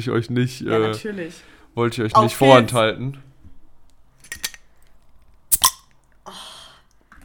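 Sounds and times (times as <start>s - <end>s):
speech: 0.0s - 3.3s
beer bottle cap opening: 4.2s - 4.6s, 5.5s - 6.0s.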